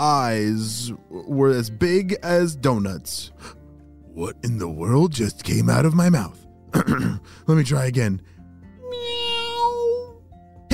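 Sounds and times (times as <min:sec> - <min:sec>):
speech: 0:00.0 - 0:03.6, 0:04.2 - 0:08.4
single long drawn-out cat meow: 0:08.8 - 0:10.2.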